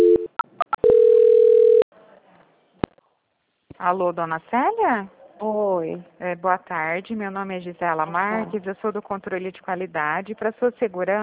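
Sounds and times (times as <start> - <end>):
telephone tones and beeps during a call transfer: 0.0 - 1.8
speech: 3.8 - 11.2.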